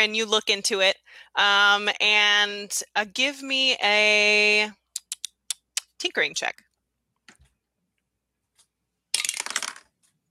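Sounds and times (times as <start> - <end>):
speech: 0.0 - 4.8, 6.0 - 6.6
dice tumbling through a castle-shaped dice tower: 9.2 - 9.9.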